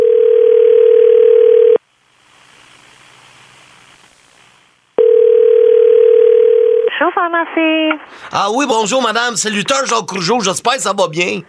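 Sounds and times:
telephone ringback tone after dialing a pharmacy number: 0.0s - 1.8s, 5.0s - 6.9s
speech: 7.2s - 11.4s.

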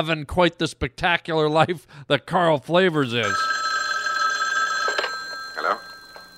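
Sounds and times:
speech: 0.0s - 3.5s
telephone ringing with electronic tones: 3.2s - 6.3s.

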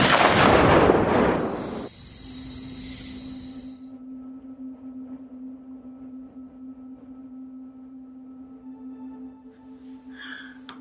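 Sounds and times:
single loud gunshot with decay: 0.0s - 1.9s
thin steady ringing tone: 1.2s - 9.3s.

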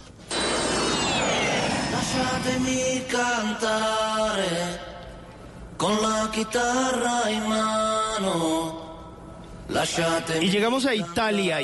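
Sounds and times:
airplane high whine dropping in pitch: 0.0s - 5.8s
airplane jet roar sound effect: 0.2s - 3.9s
speech: 2.4s - 4.9s, 5.8s - 8.8s, 9.7s - 11.6s.

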